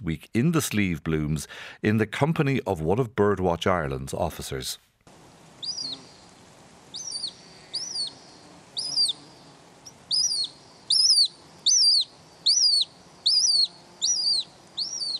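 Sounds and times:
speech: 0.0 - 4.9
hen harrier calls in breeding area in Ireland: 6.9 - 8.2, 9.9 - 15.1.

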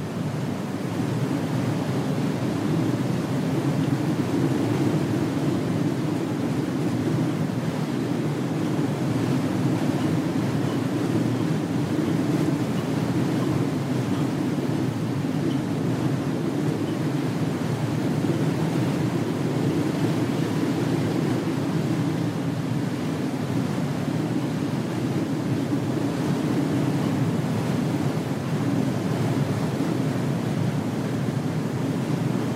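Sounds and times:
freshened wind moaning around a tower building: 0.0 - 32.5.

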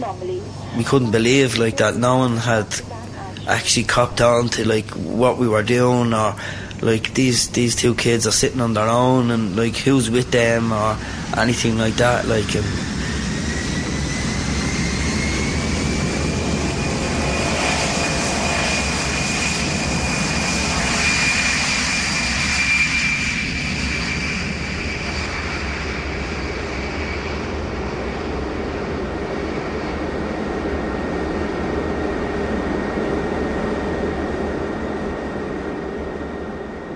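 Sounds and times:
speech: 0.0 - 12.9
airplane engine drone in flight: 0.0 - 36.9
faint high whine of airplane engine: 0.0 - 36.9.

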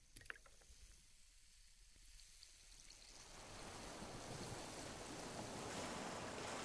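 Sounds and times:
Atlantic sea waves splashing around a boat on its way to Cape Clear: 3.3 - 6.6.

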